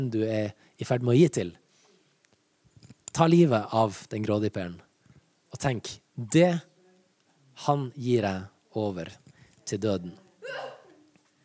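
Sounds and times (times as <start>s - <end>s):
speech: 0.0s - 1.6s, 3.1s - 4.9s, 5.5s - 6.7s, 7.6s - 10.7s
faint noise: 0.0s - 11.4s
sneeze: 10.4s - 11.0s.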